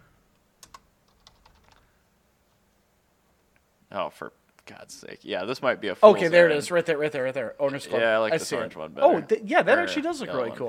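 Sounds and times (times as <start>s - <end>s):
typing on a computer keyboard: 0.6s - 1.8s
speech: 3.9s - 10.6s.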